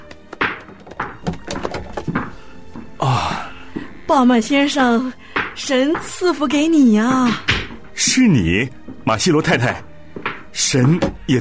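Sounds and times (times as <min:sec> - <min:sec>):
house door opening with dull hollow thunks and knocks: 0:00.1 - 0:02.3, 0:10.2 - 0:11.3
speech: 0:04.1 - 0:09.9, 0:10.6 - 0:11.3.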